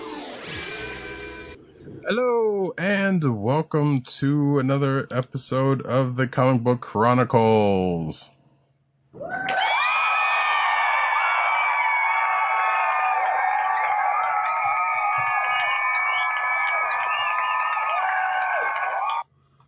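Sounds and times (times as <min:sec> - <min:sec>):
speech: 0:02.1 - 0:08.3
loud crowd cheering, whooping and applauding: 0:09.3 - 0:19.3.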